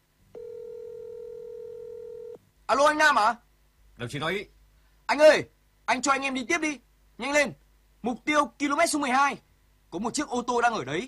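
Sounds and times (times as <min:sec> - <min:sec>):
telephone dial tone while a call is placed: 0:00.4 - 0:02.4
speech: 0:02.7 - 0:03.4, 0:04.0 - 0:11.0.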